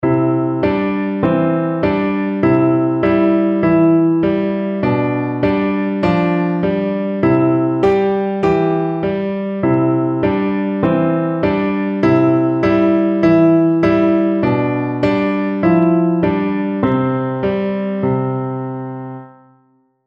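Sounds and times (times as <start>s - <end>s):
nursery rhyme played on piano: 0.0s - 19.8s.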